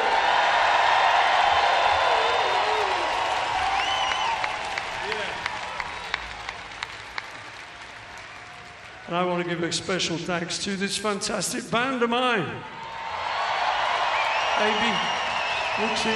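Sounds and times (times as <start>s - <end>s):
large concert crowd applauding and cheering: 0.0s - 10.2s, 12.7s - 16.1s
scattered individual claps: 2.8s - 9.1s
concert crowd whistles: 3.6s - 4.6s, 14.1s - 16.1s
speech: 9.2s - 12.8s, 14.6s - 15.1s, 15.8s - 16.1s.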